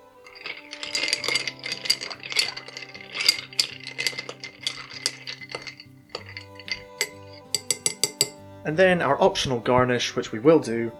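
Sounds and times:
ice and spoon clinking against a glass while stirring an old fashioned cocktail: 0.2 - 8.4
speech: 8.7 - 10.9.

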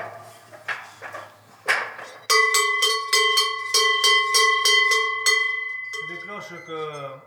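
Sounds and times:
large Savoie-style cowbells clanging: 2.0 - 7.2.

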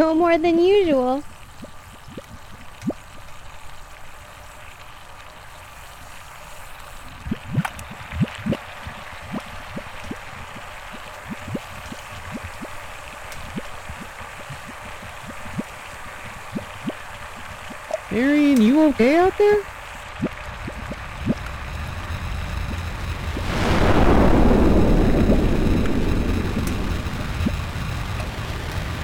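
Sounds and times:
speech: 0.0 - 1.3, 18.9 - 19.7
water fizzing and bubbling: 0.0 - 29.0.

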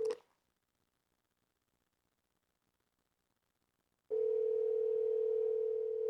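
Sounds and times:
phone ringback tone during an outgoing call: 4.1 - 6.0.

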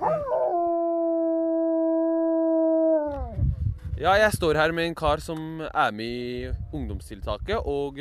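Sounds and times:
dog howling: 0.0 - 3.4
speech: 4.0 - 7.9.

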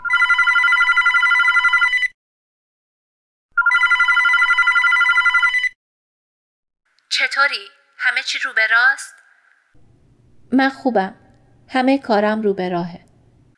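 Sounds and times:
telephone ringing: 0.0 - 2.2, 3.6 - 5.8
speech: 7.4 - 9.2, 10.5 - 13.0.

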